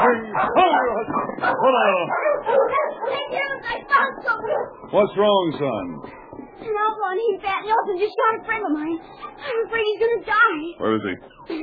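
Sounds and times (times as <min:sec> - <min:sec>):
dogs yipping, whining and barking excitedly: 0:00.0 - 0:06.6, 0:07.7 - 0:09.9
speech: 0:01.6 - 0:11.6.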